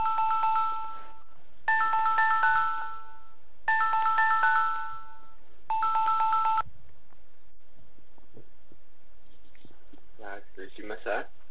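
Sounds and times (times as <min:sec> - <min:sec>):
telephone ringing tone while connecting caller: 0:00.0 - 0:06.7.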